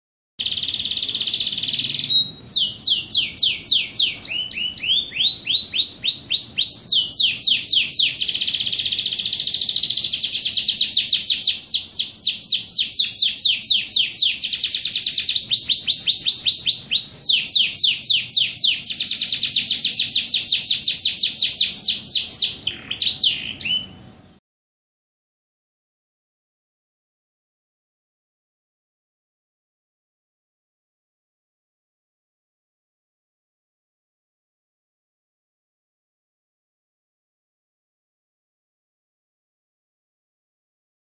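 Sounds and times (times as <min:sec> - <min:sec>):
canary singing: 0:00.4 - 0:24.4.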